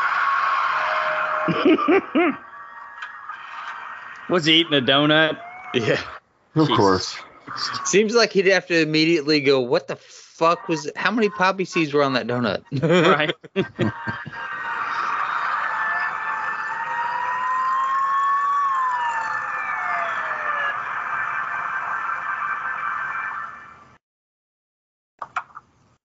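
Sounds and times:
police car siren wailing during a traffic stop: 0.0 - 6.2, 13.9 - 24.0
laughter: 0.6 - 8.2, 10.3 - 21.0
speech: 1.5 - 2.5, 4.3 - 14.5.

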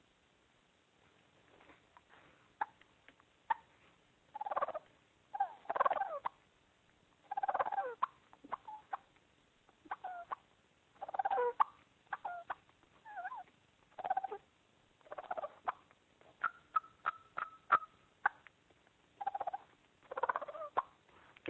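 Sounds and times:
soft turkey clucks made on a mouth call: 4.3 - 6.4, 7.2 - 9.1, 9.8 - 14.4, 15.0 - 18.6, 19.2 - 21.0
purring turkey yelps on a mouth call: 4.4 - 6.3, 7.2 - 9.0, 9.9 - 10.4, 11.0 - 15.8, 19.2 - 20.9.

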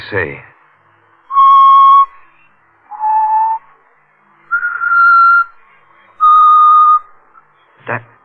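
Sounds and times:
person whistling a slow tune: 1.3 - 2.2, 2.9 - 3.6, 4.5 - 5.6, 6.2 - 7.1.

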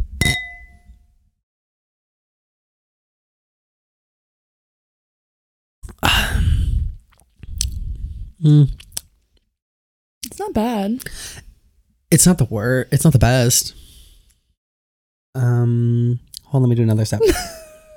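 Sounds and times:
wine glasses of honeydew Moscato clinking in a toast: 0.2 - 0.9
sipping of wine: 6.8 - 9.1
brief hummed vocal noise: 8.4 - 8.8
speech: 8.4 - 8.8, 10.5 - 11.4, 12.1 - 13.8, 15.4 - 17.6.

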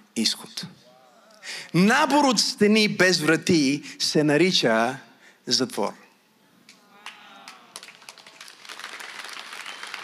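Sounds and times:
speech: 0.2 - 0.8, 1.4 - 6.0
audience applause in a church: 7.0 - 10.0.

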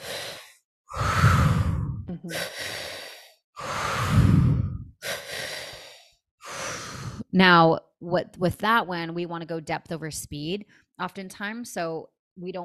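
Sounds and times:
heavy sighing exhales through the mouth: 0.0 - 7.2
long airy inhales filling belly and chest: 0.0 - 7.2
speech: 2.2 - 2.6, 7.3 - 12.6.

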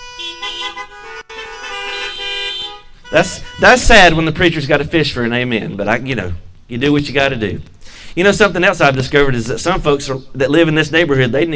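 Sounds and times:
several car horns honking: 0.0 - 4.9
speech: 3.1 - 11.5.

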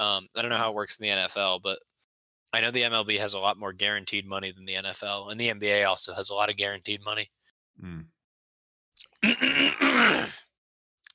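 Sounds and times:
speech: 0.0 - 1.9, 2.5 - 8.1, 9.2 - 10.4
man clearing his throat: 9.2 - 10.5.

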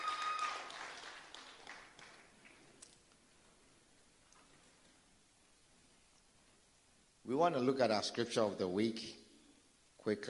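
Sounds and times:
church audience clapping hands: 0.0 - 2.8
speech: 7.3 - 9.2, 10.0 - 10.2.

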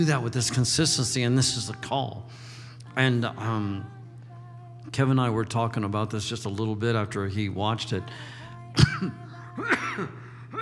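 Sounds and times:
speech: 0.0 - 4.0, 4.9 - 10.6
person clearing throat during a prayer talk: 8.8 - 10.6.

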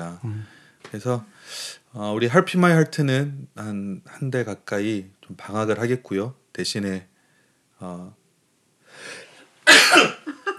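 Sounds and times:
short quieter breathy sounds: 0.0 - 2.1, 8.9 - 9.4
speech: 0.0 - 7.1, 7.8 - 8.2, 9.0 - 10.2
loud explosive sneeze: 9.7 - 10.3.

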